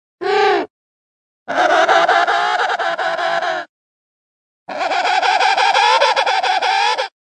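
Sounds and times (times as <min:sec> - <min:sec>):
emperor penguin calling: 0:01.5 - 0:03.7, 0:04.7 - 0:07.2.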